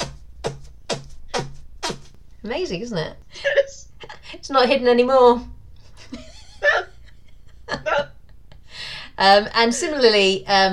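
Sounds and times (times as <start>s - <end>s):
fart-like blurts made by pressing palms together: 0.0s - 2.2s
speech: 2.4s - 3.6s, 4.3s - 5.6s, 9.2s - 10.7s
laughter: 3.4s - 4.4s, 6.0s - 8.1s.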